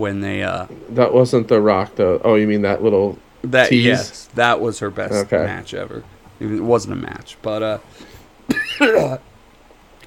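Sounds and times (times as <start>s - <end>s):
speech: 0.0s - 9.3s
person coughing raspily: 8.5s - 9.2s.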